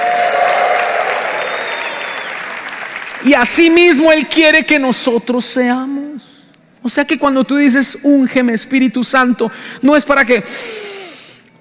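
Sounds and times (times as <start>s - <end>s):
audience clapping: 0.0s - 3.8s
speech: 3.2s - 6.0s, 6.8s - 10.8s.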